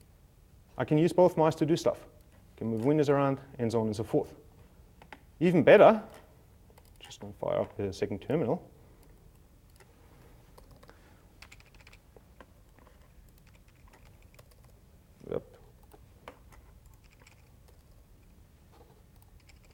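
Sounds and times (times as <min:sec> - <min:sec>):
speech: 0:00.8 - 0:04.4, 0:05.4 - 0:06.2, 0:07.1 - 0:08.7
typing on a computer keyboard: 0:10.6 - 0:12.0, 0:12.7 - 0:14.8, 0:16.8 - 0:18.0, 0:19.1 - 0:19.7.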